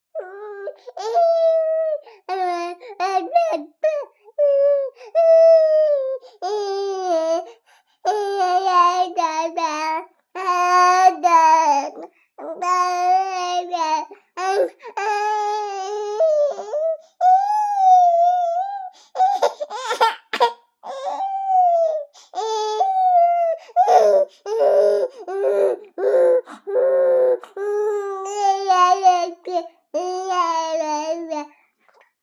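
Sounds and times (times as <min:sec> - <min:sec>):
3-month-old baby boy whining: 0:00.2 - 0:07.5, 0:08.1 - 0:31.5.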